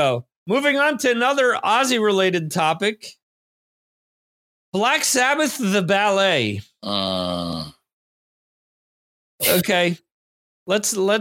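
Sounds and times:
speech: 0:00.0 - 0:03.2, 0:04.7 - 0:07.8, 0:09.4 - 0:10.0, 0:10.7 - 0:11.1
short low human groan: 0:06.8 - 0:07.8, 0:09.4 - 0:09.6.

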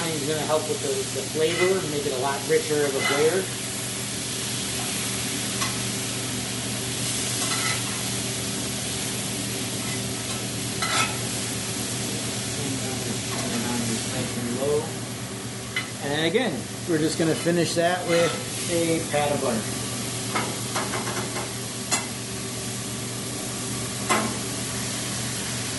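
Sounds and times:
food frying in a pan being stirred: 0:00.0 - 0:25.7
speech: 0:00.3 - 0:03.7, 0:16.2 - 0:20.6
brief scraping in a pan: 0:01.4 - 0:01.9, 0:02.8 - 0:03.4, 0:07.4 - 0:08.0, 0:17.3 - 0:18.5.

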